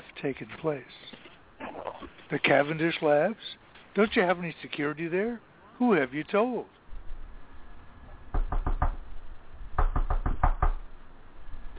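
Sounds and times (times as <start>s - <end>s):
faint hum: 0.0s - 11.7s
speech: 0.2s - 1.1s, 2.3s - 6.8s
sharp knocking on a door: 8.3s - 9.0s, 9.8s - 10.8s.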